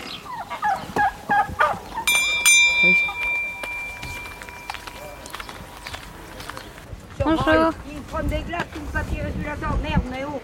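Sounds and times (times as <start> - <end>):
poultry clucking in a farmyard: 0.0 - 6.8
farmyard noise: 0.0 - 9.2
bright ringing tone: 2.1 - 6.0
speech: 7.4 - 10.4.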